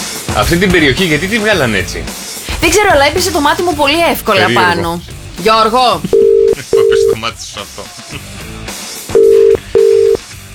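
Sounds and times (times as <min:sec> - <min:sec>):
speech: 0:00.4 - 0:06.2, 0:07.2 - 0:08.2
mid-pitched ringback tones of an outgoing telephone call: 0:06.1 - 0:07.2, 0:09.1 - 0:10.2.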